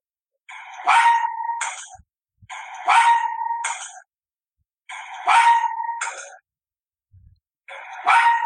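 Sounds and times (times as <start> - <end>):
Arctic fox short harsh bark: 0.6 - 1.8, 2.5 - 4.0, 4.9 - 6.4, 7.7 - 8.4.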